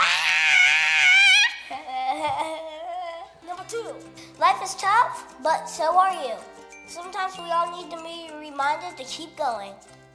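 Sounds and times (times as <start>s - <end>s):
person screaming: 0.0s - 1.8s
speech: 4.4s - 10.0s.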